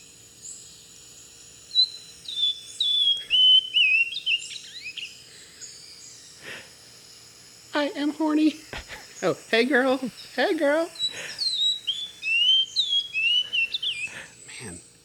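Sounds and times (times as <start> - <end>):
hiss: 0.0 - 15.0
bird whistling call: 1.6 - 6.8, 9.0 - 14.8
speech: 7.8 - 11.2.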